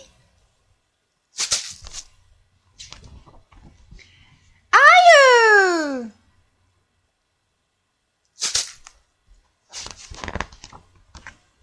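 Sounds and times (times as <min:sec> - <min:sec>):
child crying: 0:04.7 - 0:06.1.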